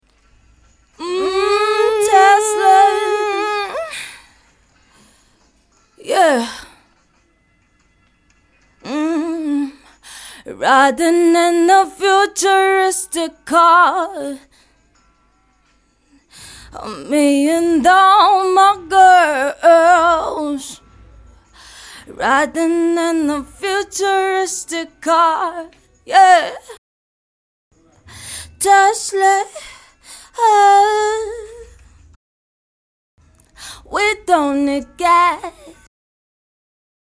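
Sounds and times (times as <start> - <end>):
woman singing pop R and B: 1.0 - 4.2, 6.0 - 6.7, 8.8 - 14.5, 16.4 - 20.8, 21.8 - 26.8, 28.5 - 31.7, 33.6 - 35.8.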